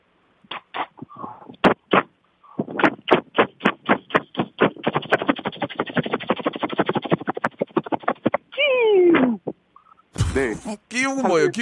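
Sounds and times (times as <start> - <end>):
voice mimicking a helicopter starting up and climbing to 3,000 feet: 1.7 - 9.4
laughter: 10.4 - 11.6
speech: 10.4 - 11.6.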